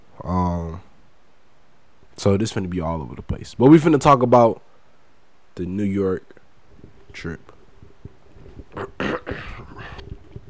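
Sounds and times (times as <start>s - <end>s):
faint low hum: 0.0s - 10.4s
speech: 2.2s - 4.7s, 5.6s - 6.4s, 7.1s - 7.5s
person clearing throat: 8.7s - 10.0s.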